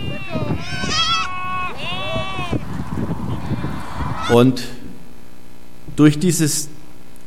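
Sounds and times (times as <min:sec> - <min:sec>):
goat bleating: 0:00.0 - 0:02.6, 0:04.1 - 0:04.6
noisy background with low rumbling: 0:00.0 - 0:06.0
speech: 0:04.3 - 0:04.8, 0:06.0 - 0:06.7.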